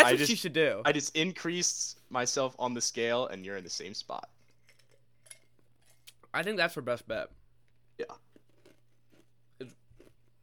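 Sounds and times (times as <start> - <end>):
speech: 0.0 - 4.4, 6.3 - 7.4, 8.0 - 8.3
person biting and chewing crisp food: 4.4 - 6.2, 7.7 - 10.4.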